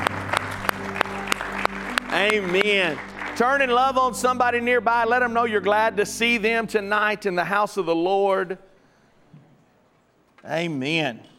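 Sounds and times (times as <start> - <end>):
crowd clapping together in a steady rhythm: 0.0 - 4.7
sustained low musical hum: 0.0 - 7.0
speech: 2.2 - 8.7, 10.4 - 11.3.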